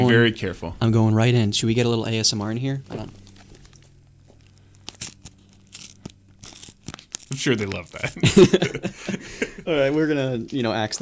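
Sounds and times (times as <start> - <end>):
speech: 0.1 - 3.2, 7.3 - 11.0
gift wrapping paper being torn open: 3.2 - 8.6
laughter: 8.0 - 10.0.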